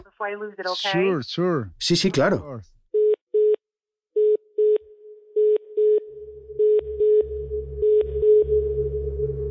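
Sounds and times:
speech: 0:00.2 - 0:02.8
telephone line tone as an incoming call is picked up: 0:04.2 - 0:09.4.

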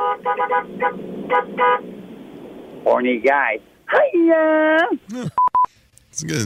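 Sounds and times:
truck horn honking: 0:00.0 - 0:02.8
low rumble: 0:00.0 - 0:05.2
speech: 0:00.2 - 0:02.0, 0:02.8 - 0:05.4, 0:06.2 - 0:06.4.

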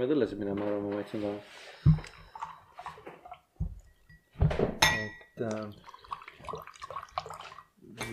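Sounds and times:
speech: 0:00.0 - 0:02.2, 0:05.4 - 0:05.9
water pouring: 0:01.2 - 0:04.1, 0:05.4 - 0:08.1
glass and dish clinks: 0:03.9 - 0:05.4.

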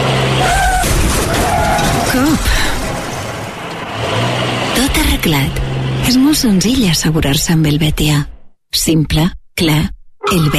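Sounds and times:
car roaring: 0:00.0 - 0:06.7
speech: 0:06.3 - 0:10.5.

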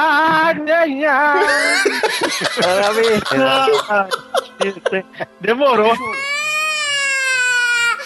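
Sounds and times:
speech: 0:00.0 - 0:06.2
person fake wailing sob: 0:01.2 - 0:08.0
laughter: 0:01.4 - 0:06.2.

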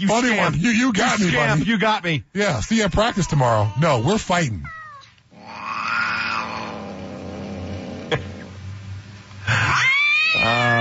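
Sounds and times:
speech: 0:00.0 - 0:04.8, 0:10.4 - 0:10.7
cat meowing: 0:03.0 - 0:06.8, 0:09.7 - 0:10.7.

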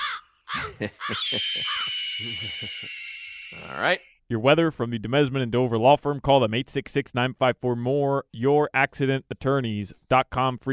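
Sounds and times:
laughter: 0:00.6 - 0:03.2
speech: 0:00.7 - 0:10.7
loud piercing hawk cry: 0:01.2 - 0:04.0.

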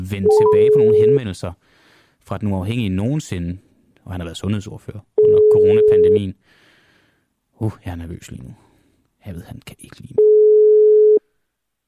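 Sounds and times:
speech: 0:00.0 - 0:06.6, 0:07.6 - 0:08.6, 0:09.2 - 0:10.3
telephone ringback tone while calling a health spokesperson's phone: 0:00.3 - 0:01.2, 0:10.2 - 0:11.2.

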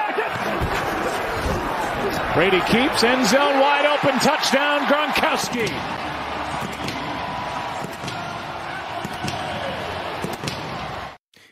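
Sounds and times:
huge stadium crowd roaring after a touchdown: 0:00.0 - 0:11.2
speech: 0:02.4 - 0:06.0
sharp bangs and claps: 0:03.9 - 0:11.1.

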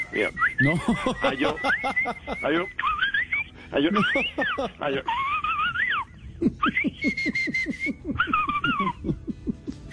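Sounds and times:
laughter: 0:00.1 - 0:09.9
speech: 0:00.2 - 0:02.9, 0:03.7 - 0:05.2, 0:06.4 - 0:09.8
person whistling a lively bird-like tune: 0:06.9 - 0:08.1.

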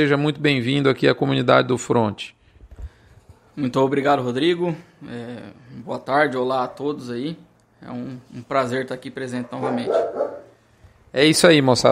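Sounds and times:
speech: 0:00.0 - 0:02.4, 0:03.6 - 0:10.2, 0:11.1 - 0:11.9
dog barking: 0:09.4 - 0:10.6.

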